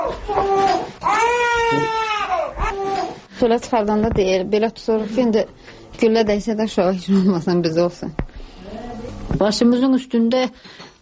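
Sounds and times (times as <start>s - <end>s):
two-month-old infant crying at home: 0.0s - 3.3s
speech: 3.4s - 8.2s, 9.3s - 10.9s.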